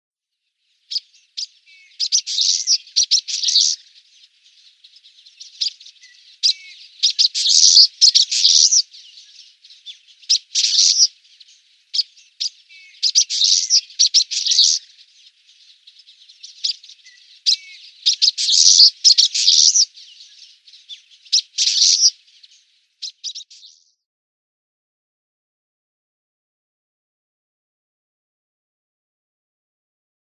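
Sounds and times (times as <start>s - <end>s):
Common Waxbill song: 0.3s - 24.1s.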